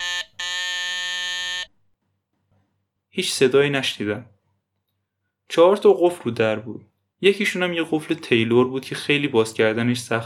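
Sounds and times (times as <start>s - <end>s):
harsh electric doorbell buzzer: 0.0s - 1.8s
speech: 3.2s - 4.4s, 5.6s - 10.2s.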